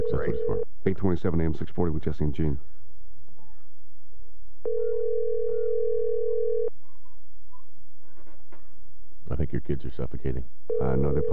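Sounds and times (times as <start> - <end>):
telephone dial tone while placing a call: 0.0 - 0.6, 4.7 - 6.7
speech: 0.1 - 2.8, 9.7 - 11.3.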